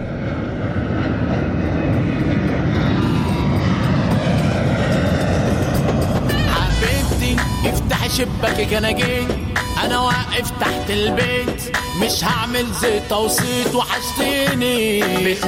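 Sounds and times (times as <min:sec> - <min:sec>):
airplane engine roaring as aircraft passes: 0:00.0 - 0:15.4
high tonal aircraft whines: 0:00.0 - 0:15.4
speech: 0:08.2 - 0:15.4.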